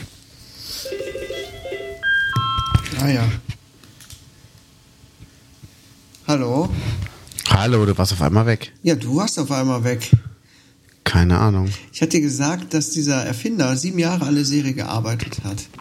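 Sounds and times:
electronic ringing tone of an outgoing call on a phone line: 0:00.9 - 0:03.1
speech: 0:07.6 - 0:10.3, 0:11.1 - 0:15.7.

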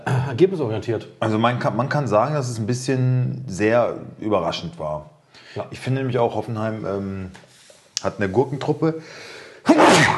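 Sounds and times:
speech: 0:00.3 - 0:10.1
sneeze: 0:09.7 - 0:10.1.

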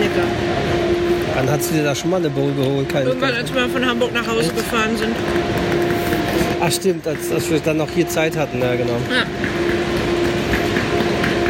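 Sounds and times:
dense rumble of railway ambience: 0:00.0 - 0:11.4
low droning hum: 0:00.0 - 0:11.4
speech: 0:01.4 - 0:09.6.

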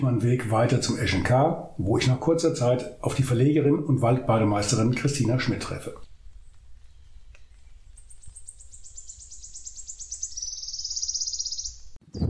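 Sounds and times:
speech: 0:00.0 - 0:06.1
bird singing a fast high trill: 0:06.4 - 0:12.0.

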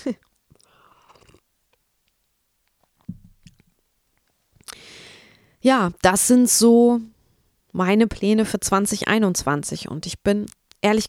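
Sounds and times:
speech: 0:00.0 - 0:00.3, 0:05.6 - 0:07.1, 0:07.7 - 0:11.0
person sipping a drink: 0:00.2 - 0:01.8
breathy exhale: 0:04.7 - 0:05.6.

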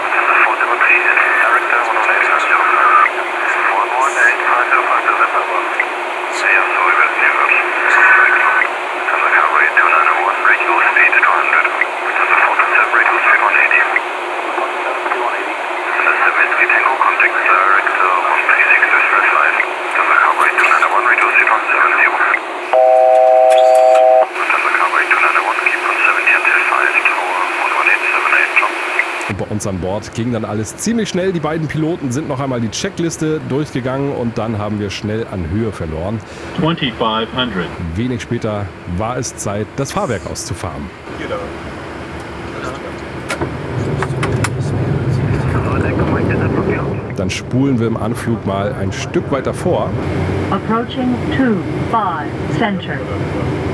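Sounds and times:
air traffic control radio chatter in cockpit: 0:00.0 - 0:41.4, 0:45.2 - 0:49.9, 0:50.5 - 0:53.3
brief beeping tone: 0:22.7 - 0:24.3
aircraft engine drone: 0:28.8 - 0:53.7
speech: 0:29.6 - 0:41.7, 0:47.3 - 0:53.7.

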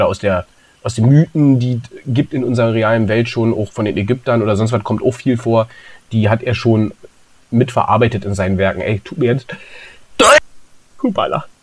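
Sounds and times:
speech: 0:00.0 - 0:10.4, 0:11.0 - 0:11.6
faint breathy intake: 0:05.7 - 0:06.1, 0:09.5 - 0:10.1
loud sneeze: 0:10.2 - 0:10.4.

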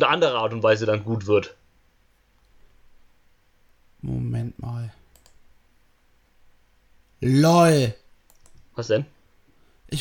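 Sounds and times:
speech: 0:00.0 - 0:01.6, 0:04.0 - 0:05.0, 0:07.2 - 0:08.0, 0:08.8 - 0:09.2
faint steady hiss: 0:00.0 - 0:09.9
computer mouse clicks: 0:05.1 - 0:05.4, 0:08.2 - 0:08.7.

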